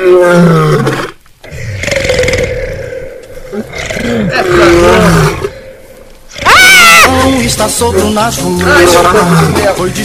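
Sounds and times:
lion roaring: 0:00.0 - 0:07.1
speech: 0:07.6 - 0:10.0.

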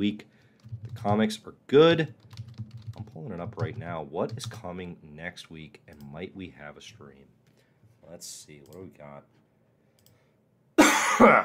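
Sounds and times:
speech: 0:00.0 - 0:02.2, 0:03.2 - 0:07.3, 0:08.1 - 0:09.4, 0:11.1 - 0:11.4
harsh coughs: 0:10.8 - 0:11.4.

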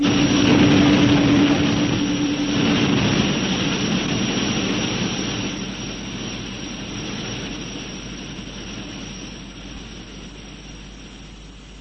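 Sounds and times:
spaceship engines roaring at full power: 0:00.0 - 0:10.7.

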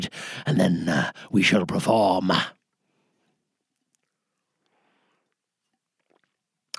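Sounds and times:
speech: 0:00.0 - 0:02.6
person sipping water: 0:03.8 - 0:06.7
swallow: 0:03.9 - 0:06.7
mouth clicks: 0:06.0 - 0:06.7.

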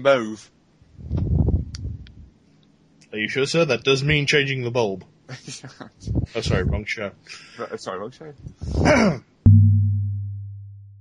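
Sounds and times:
speech: 0:00.0 - 0:01.2, 0:03.1 - 0:09.3
heavy breathy exhale into the microphone: 0:07.2 - 0:07.7, 0:08.5 - 0:08.9
low humming tone: 0:09.5 - 0:11.0
sharp knock: 0:09.5 - 0:11.0.

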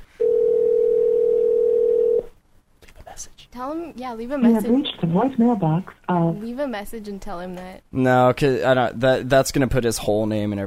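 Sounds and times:
telephone dial tone after a number is dialed: 0:00.2 - 0:02.3
speech: 0:03.6 - 0:10.6.

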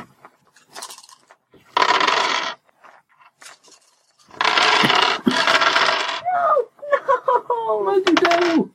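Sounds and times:
dice rolling for a tabletop role-playing game: 0:00.6 - 0:06.2, 0:08.1 - 0:08.6
laughter: 0:06.8 - 0:07.9.

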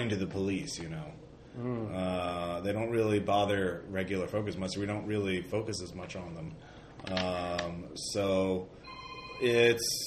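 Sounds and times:
speech: 0:00.0 - 0:08.8, 0:09.4 - 0:10.0
mobile phone ringing with a bright melodic ringtone: 0:08.8 - 0:10.0.

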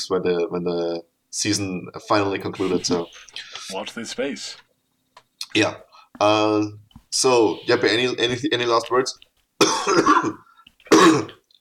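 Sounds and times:
speech: 0:00.0 - 0:04.6, 0:05.5 - 0:10.4
person coughing: 0:09.6 - 0:11.4.

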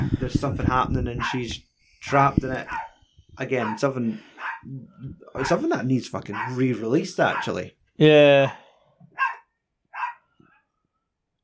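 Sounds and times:
speech: 0:00.2 - 0:08.6
dog barking: 0:02.6 - 0:02.9, 0:03.6 - 0:04.6, 0:06.3 - 0:07.6, 0:09.2 - 0:10.2.

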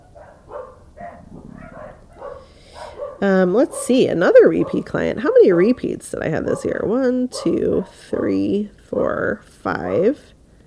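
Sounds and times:
dog barking loudly: 0:00.0 - 0:03.9, 0:04.5 - 0:08.0
speech: 0:03.2 - 0:10.3.

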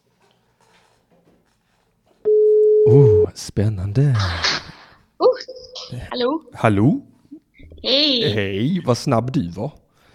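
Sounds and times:
telephone ringing tone on an outgoing call: 0:02.3 - 0:03.2
speech: 0:02.9 - 0:04.6, 0:06.2 - 0:07.1, 0:07.8 - 0:09.8.

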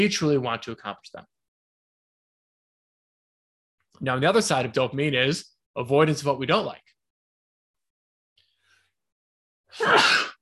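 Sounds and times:
speech: 0:00.0 - 0:01.4, 0:04.0 - 0:06.9, 0:09.7 - 0:10.3
sneeze: 0:09.8 - 0:10.3.

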